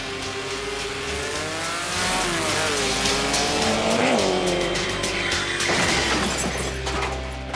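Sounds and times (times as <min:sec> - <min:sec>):
steady engine drone with rising and falling revs in a traffic jingle: 0:00.0 - 0:06.8
tire squeal: 0:02.3 - 0:06.8.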